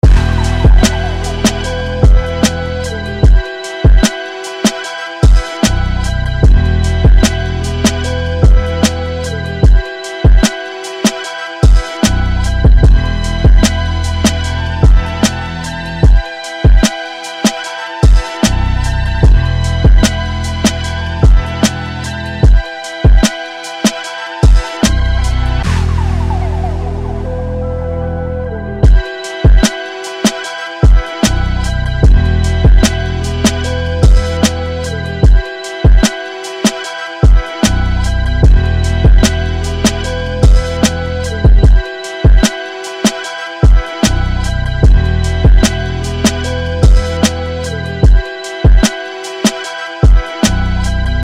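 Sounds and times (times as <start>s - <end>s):
boom-bap beat: 0.0s - 27.3s, 28.8s - 51.2s.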